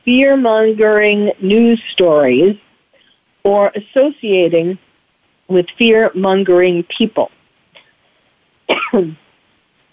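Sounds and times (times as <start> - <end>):
speech: 0.0 - 2.6, 3.4 - 4.8, 5.5 - 7.4, 8.7 - 9.2
person coughing: 8.7 - 9.2.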